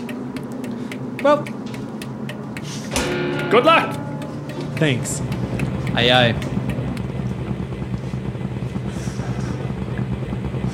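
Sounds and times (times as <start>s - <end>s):
speech: 1.2s - 1.8s, 2.7s - 4.0s, 4.8s - 6.5s
helicopter engine and rotor noise: 2.1s - 10.7s.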